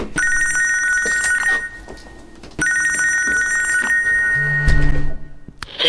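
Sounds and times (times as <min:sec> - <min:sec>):
mobile phone ringing: 0:00.2 - 0:05.4
low buzzing hum: 0:04.4 - 0:05.7.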